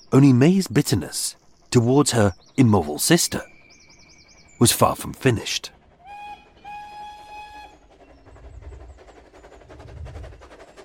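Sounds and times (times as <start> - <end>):
speech: 0.1 - 3.5, 4.6 - 5.8
train wheels clattering over rail joints with rumbling carriages: 0.1 - 10.8
train whistle-like tone: 6.0 - 8.0.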